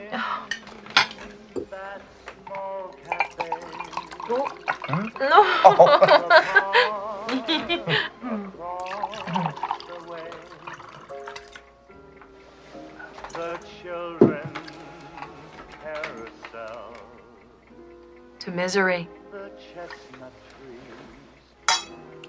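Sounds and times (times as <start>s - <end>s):
light clinks of glassware and cutlery: 0.4s - 1.9s, 2.5s - 6.7s, 8.8s - 11.7s, 13.0s - 16.9s, 21.7s - 22.2s
wine glugging and splashing into a glass: 2.5s - 6.8s, 8.6s - 11.7s, 13.1s - 13.6s
speech: 4.3s - 6.9s, 18.6s - 19.2s
laughter: 4.9s - 8.5s.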